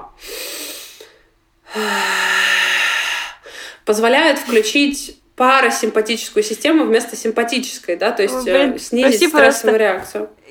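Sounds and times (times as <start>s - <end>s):
slow deep breath with long exhale: 0.2s - 3.9s
speech: 1.8s - 2.1s, 3.9s - 10.4s.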